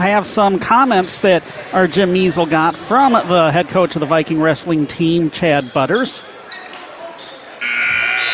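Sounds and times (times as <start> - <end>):
speech: 0.0 - 6.4
chatter in a gym: 0.0 - 8.3
crowd noise in a busy gym: 0.0 - 8.3
game-ending buzzer at basketball game in a busy gym: 7.6 - 8.3.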